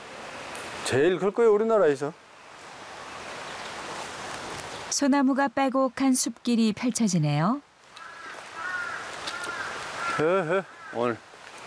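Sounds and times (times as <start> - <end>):
steady outdoor hiss: 0.0 - 11.6
speech: 0.9 - 2.2, 5.0 - 7.7, 10.2 - 11.3
crows cawing in pine forest at mountain temple: 7.9 - 11.3.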